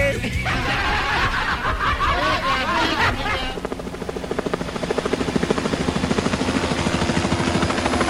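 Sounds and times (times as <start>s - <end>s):
people talking: 0.0s - 3.6s
people laughing: 0.0s - 3.7s
helicopter rotor thumping: 0.8s - 8.0s.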